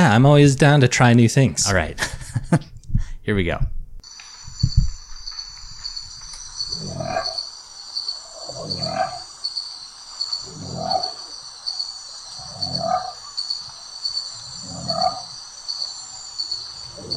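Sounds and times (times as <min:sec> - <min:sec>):
speech: 0:00.0 - 0:03.8
crickets chirping: 0:04.0 - 0:17.1
deep throaty animal call: 0:06.6 - 0:07.5, 0:08.1 - 0:09.5, 0:10.3 - 0:17.1.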